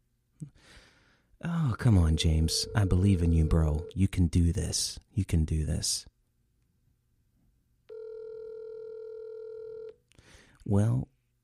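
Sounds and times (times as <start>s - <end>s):
speech: 1.4s - 6.1s, 10.6s - 11.1s
telephone ringback tone: 2.2s - 3.9s, 7.9s - 9.9s.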